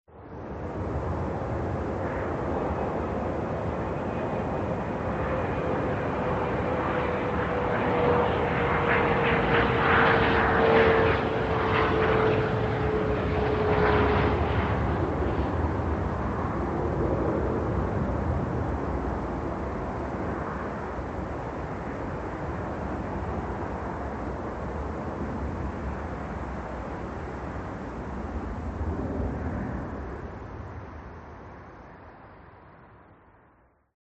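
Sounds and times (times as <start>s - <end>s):
jet airplane: 0.1s - 33.9s.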